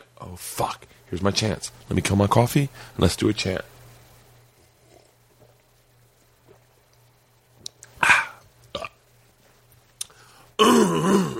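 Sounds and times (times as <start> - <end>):
speech: 0.2 - 3.7
person clearing throat: 8.0 - 9.0, 10.6 - 11.3.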